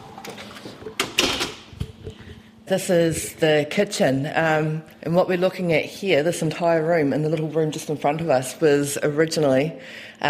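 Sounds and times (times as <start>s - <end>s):
door being pushed shut into its frame: 1.0s - 1.6s
speech: 2.7s - 10.2s.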